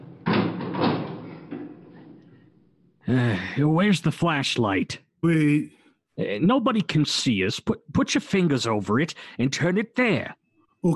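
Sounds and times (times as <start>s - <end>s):
door grinding, creaking drag: 0.0s - 2.5s
speech: 3.1s - 10.9s.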